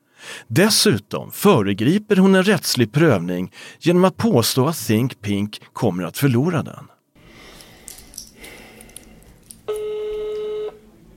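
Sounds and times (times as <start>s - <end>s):
speech: 0.5s - 6.9s
telephone ringing tone: 9.7s - 10.8s.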